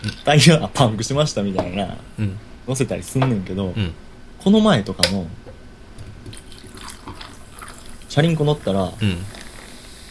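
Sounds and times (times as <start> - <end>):
speech: 0.0 - 5.4, 8.2 - 9.4
freshly poured carbonated drink fizzing: 6.3 - 10.0.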